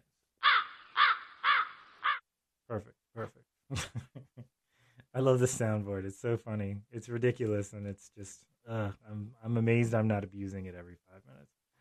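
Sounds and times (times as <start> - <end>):
crow cawing: 0.4 - 2.2
speech: 2.7 - 11.6
laughter: 3.7 - 4.4.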